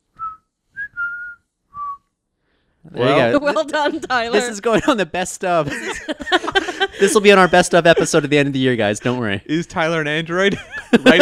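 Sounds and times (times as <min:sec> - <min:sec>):
person whistling a nursery rhyme tune: 0:00.0 - 0:02.1
speech: 0:02.8 - 0:11.2
laughter: 0:03.0 - 0:11.2.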